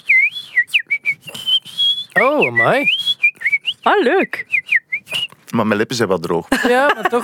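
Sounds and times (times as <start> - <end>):
person whistling a lively tune: 0.0 - 5.4
speech: 2.2 - 3.0, 3.9 - 4.5, 5.5 - 7.2
laughter: 6.5 - 7.2.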